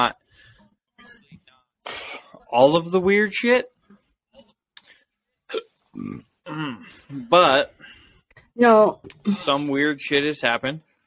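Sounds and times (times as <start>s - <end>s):
speech: 0.0s - 0.2s, 1.9s - 3.7s, 5.5s - 7.8s, 8.6s - 10.9s
hiccups and burps: 5.5s - 6.9s.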